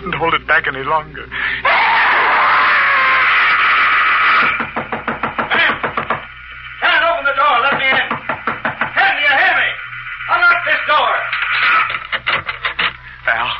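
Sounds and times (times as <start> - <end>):
steady droning hum: 0.0 - 13.5
speech: 0.2 - 1.7
rapid insistent knocking on a door: 4.5 - 6.2, 7.7 - 9.0.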